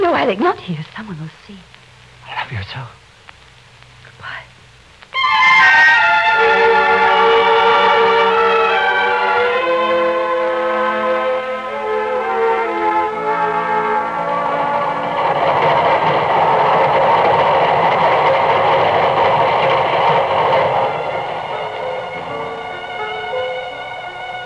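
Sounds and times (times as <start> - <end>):
speech: 0.1 - 3.0
steam train hissing rumble pulling out of a station: 0.2 - 24.4
steam train whistle: 5.1 - 18.2, 19.6 - 24.4.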